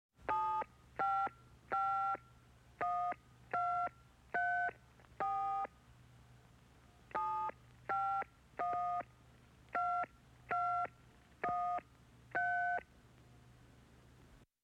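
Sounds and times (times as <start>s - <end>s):
office telephone touch tones: 0.3s - 5.7s, 7.1s - 12.9s.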